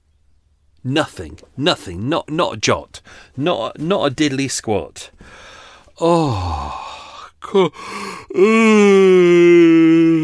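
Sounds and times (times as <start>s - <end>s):
speech: 0.8s - 6.8s, 7.5s - 10.2s
person yawning: 6.0s - 10.2s.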